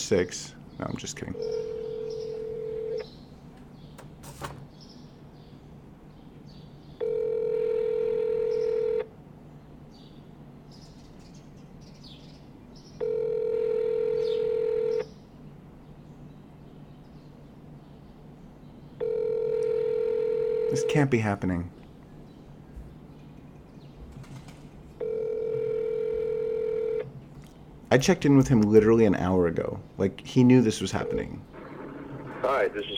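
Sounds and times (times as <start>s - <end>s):
faint hum: 0.0s - 32.9s
speech: 0.1s - 1.8s, 21.0s - 21.8s, 27.9s - 31.6s, 32.6s - 32.9s
phone line ringing in long steady electronic tones: 1.4s - 3.1s, 7.0s - 9.1s, 13.0s - 15.1s, 19.0s - 21.1s, 25.0s - 27.1s, 31.0s - 32.9s.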